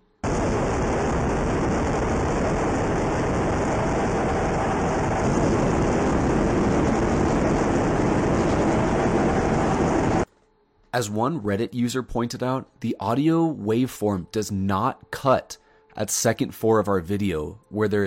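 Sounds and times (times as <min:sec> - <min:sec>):
ambient cockpit noise inside an F/A-18 Super Hornet jet: 0:00.0 - 0:10.3
faint high whine inside an F/A-18 Super Hornet jet cockpit: 0:00.0 - 0:16.8
speech: 0:11.0 - 0:18.0.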